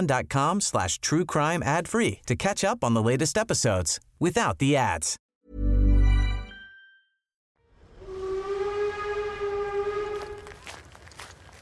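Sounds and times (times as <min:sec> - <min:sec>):
speech: 0:00.0 - 0:05.7
train horn blast as a train arrives at a station in Kristiania: 0:07.7 - 0:10.7.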